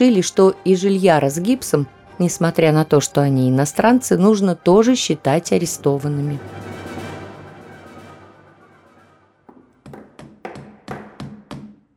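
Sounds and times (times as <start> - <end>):
speech: 0.0 - 6.7
hammers knocking with sharp wooden blows: 9.5 - 11.9.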